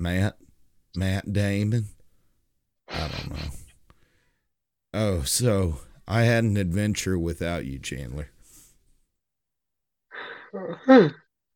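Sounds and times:
speech: 0:00.0 - 0:02.0, 0:02.9 - 0:03.6, 0:05.0 - 0:08.4, 0:10.5 - 0:11.2
person yawning: 0:10.2 - 0:11.3.

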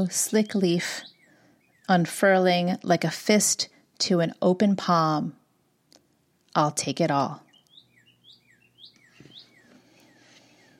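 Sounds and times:
speech: 0:00.0 - 0:01.1, 0:01.9 - 0:05.4, 0:06.6 - 0:07.4
bird chirping and whistling outside a window: 0:01.0 - 0:01.8, 0:07.5 - 0:10.7.

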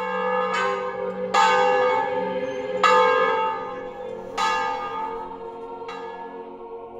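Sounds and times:
church bell tolling a mournful funeral knell: 0:00.0 - 0:06.9.

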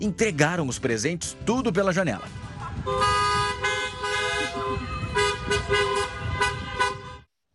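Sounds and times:
speech: 0:00.0 - 0:03.4
car horns honking in a car parade: 0:02.8 - 0:07.3.

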